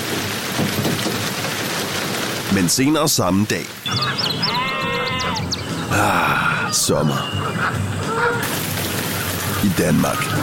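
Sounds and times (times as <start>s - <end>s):
steady rain pouring down: 0.0s - 6.7s, 7.9s - 10.4s
speech: 2.6s - 8.6s, 9.6s - 10.4s.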